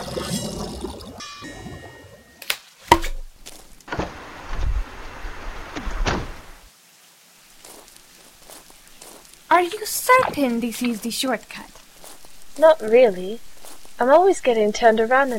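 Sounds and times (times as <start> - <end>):
rain falling: 2.3 - 15.3
sharp knocks: 2.9 - 3.3
speech: 9.6 - 11.8, 12.6 - 15.3.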